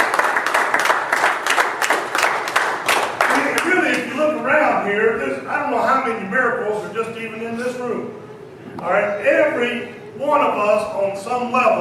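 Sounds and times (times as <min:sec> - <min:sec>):
church congregation applauding: 0:00.0 - 0:04.2
speech: 0:04.9 - 0:11.7.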